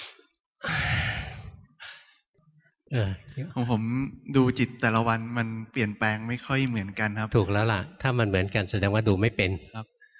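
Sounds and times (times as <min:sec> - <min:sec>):
frightened person breathing out forcefully: 0:00.6 - 0:02.1
speech: 0:02.9 - 0:10.0.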